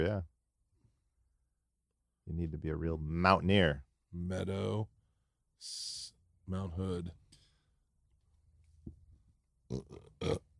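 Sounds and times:
speech: 0.0s - 0.3s, 2.3s - 5.0s, 5.6s - 7.2s, 9.7s - 10.5s
person burping: 9.7s - 10.5s.

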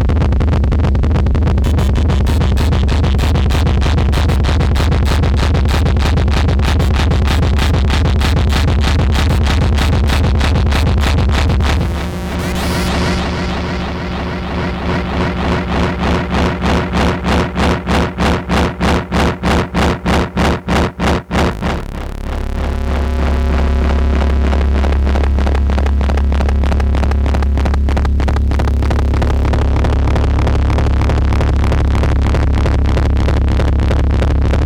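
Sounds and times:
rapid rhythmic synthetic pulsing: 0.0s - 30.5s
dense synthetic noise with a heavy low hum: 0.0s - 34.6s
scattered synthetic bursts and stutters: 0.0s - 34.6s
steadier thicker synthetic drone: 0.0s - 34.6s.

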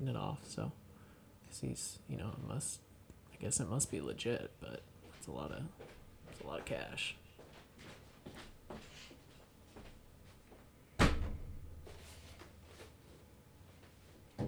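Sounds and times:
speech: 0.0s - 0.8s, 1.5s - 7.2s
door slamming shut: 11.0s - 12.1s
light knocks and rattles: 11.0s - 13.0s, 14.3s - 14.4s.

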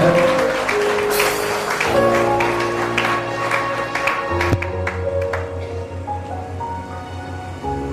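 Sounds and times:
crowd clapping: 0.0s - 5.7s
sustained keyboard-like music tones: 0.0s - 7.9s.

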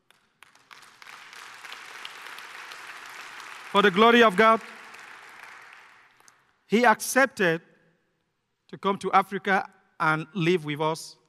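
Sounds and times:
audience applause: 0.1s - 6.4s
speech: 3.8s - 4.8s, 6.7s - 7.7s, 8.7s - 11.2s.

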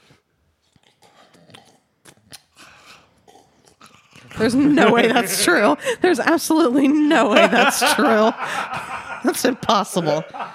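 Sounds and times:
mouth smacks and clicks: 0.6s - 4.4s
person imitating noisily drinking chocolate milk with slurping and gulping: 0.6s - 5.3s
laughter: 4.3s - 10.5s
speech: 4.4s - 10.5s.

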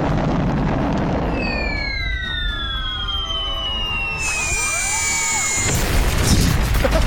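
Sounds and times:
explosion in a game blowing up a turtle struck by rockets: 0.0s - 7.0s
descending whistling tones of rockets in a game: 1.2s - 6.1s.

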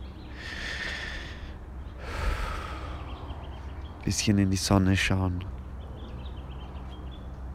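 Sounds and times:
deep slow breathing in and out: 0.3s - 3.4s
speech: 4.1s - 5.6s.

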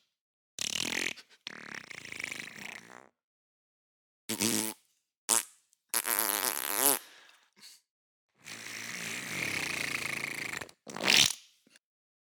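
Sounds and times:
fart noises: 0.6s - 3.1s, 4.3s - 7.1s, 9.5s - 11.3s.

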